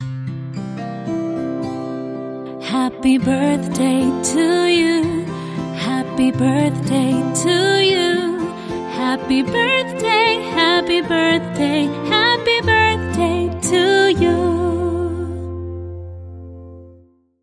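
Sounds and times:
acoustic guitar: 0.0 - 17.1
woman singing: 2.6 - 15.5.

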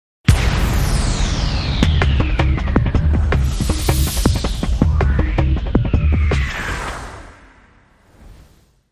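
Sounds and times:
drums: 0.2 - 7.6
banger synth stab: 0.3 - 8.0.

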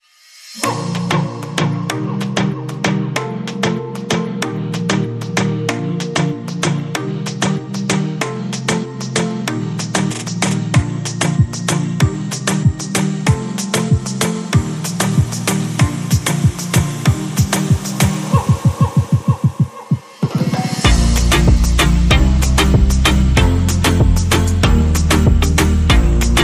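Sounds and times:
Caribean flute rhythm: 0.6 - 26.4.

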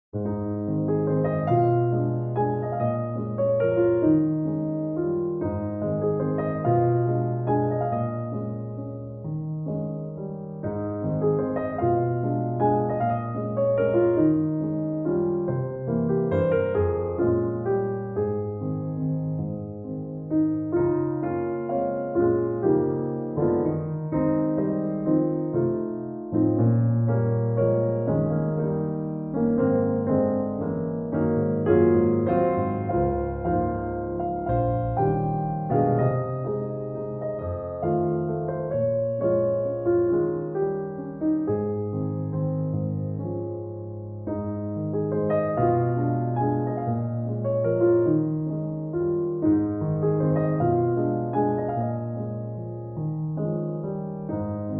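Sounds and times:
music box solo piano piece: 0.2 - 54.7.

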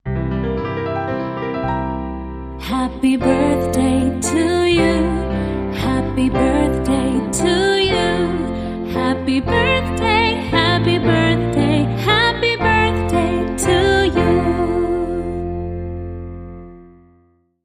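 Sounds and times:
piano accompaniment: 0.0 - 17.6
female vocal singing a traditional birthday song: 2.6 - 15.6.

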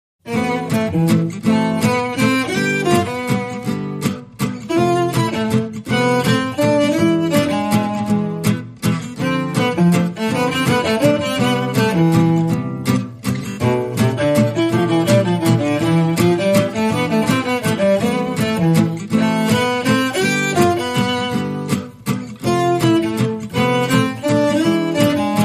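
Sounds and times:
guitars playing a bal musette waltz: 0.3 - 25.4
lead strings playing a bal musette waltz: 0.3 - 25.4.

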